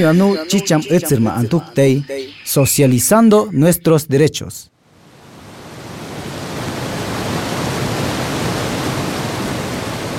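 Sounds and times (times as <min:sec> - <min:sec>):
speech: 0:00.0 - 0:04.7
flowing river water: 0:05.0 - 0:10.1.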